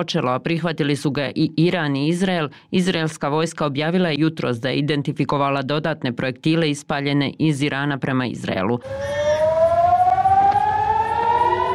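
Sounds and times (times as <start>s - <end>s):
speech: 0.0s - 9.3s
air raid siren warning of a rocket attack at a port: 8.8s - 11.7s.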